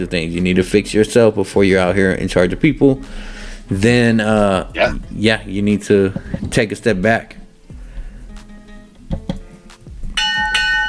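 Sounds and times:
speech: 0:00.0 - 0:07.4
bright ringing bell signaling end of time limit: 0:10.2 - 0:10.8.

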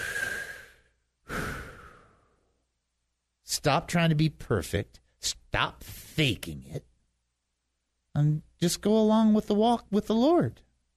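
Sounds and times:
slow deep breath in a sermon: 0:00.0 - 0:02.6
speech: 0:03.6 - 0:06.9, 0:08.2 - 0:10.7.

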